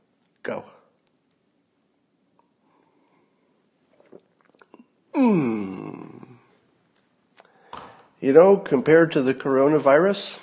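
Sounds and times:
speech: 0.5 - 0.8, 5.2 - 5.5, 8.2 - 10.4
short slurping sips of coffee from a mug: 3.8 - 5.0
small mouth sounds: 3.9 - 6.6.

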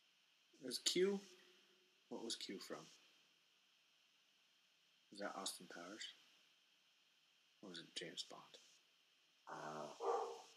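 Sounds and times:
faint steady hiss: 0.0 - 10.5
speech: 0.6 - 1.4, 2.1 - 3.0, 5.1 - 6.2, 7.6 - 8.7, 9.5 - 10.2
big dog barking: 9.9 - 10.5.

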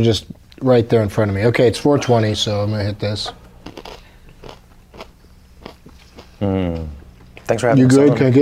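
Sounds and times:
speech: 0.0 - 3.4, 6.4 - 8.3
hard corn nuts being chewed: 3.6 - 6.4.

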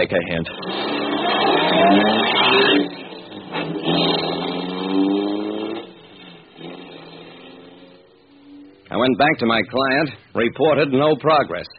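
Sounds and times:
speech: 0.0 - 3.0, 8.9 - 11.7
car engine starting and revving: 0.0 - 9.0.

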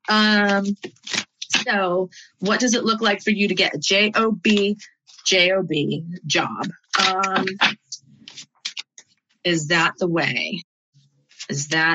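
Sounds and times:
speech: 0.1 - 7.8, 9.4 - 10.7, 11.5 - 11.9
tarot card deck being shuffled: 0.5 - 1.6.

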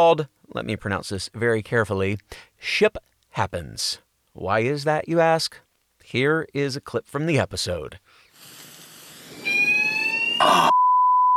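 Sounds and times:
speech: 0.0 - 8.0
harsh burst of noise: 8.3 - 10.2
fire alarm set off by deodorant spray ringing: 9.4 - 10.4.

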